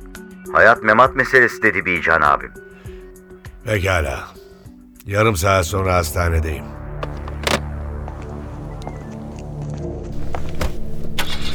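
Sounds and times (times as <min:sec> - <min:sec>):
speech: 0:00.5 - 0:02.8, 0:03.6 - 0:04.4, 0:05.0 - 0:06.8
old car engine clicks and knocks: 0:07.0 - 0:08.9
old car engine running: 0:07.0 - 0:09.4.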